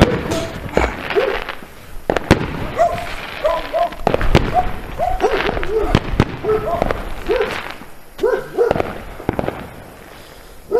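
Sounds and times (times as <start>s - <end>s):
steady rumble: 0.0s - 10.6s
fireworks bursting outside: 0.0s - 10.7s
dog barking: 1.1s - 1.5s, 2.8s - 7.6s, 8.2s - 8.8s.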